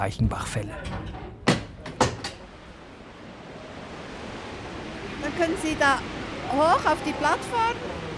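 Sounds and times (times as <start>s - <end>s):
speech: 0.0s - 1.1s, 5.3s - 8.0s
sharp metallic clunks: 0.7s - 2.5s
small funicular railway grinding up a slope: 1.0s - 8.1s.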